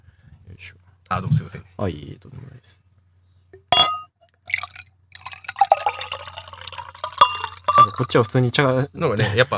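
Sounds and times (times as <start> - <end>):
speech: 0.5 - 2.8, 7.9 - 9.5
light glassy tap: 3.6 - 8.3
glass clinking: 3.6 - 8.4
red wine pouring from a bottle into a glass: 3.6 - 8.4.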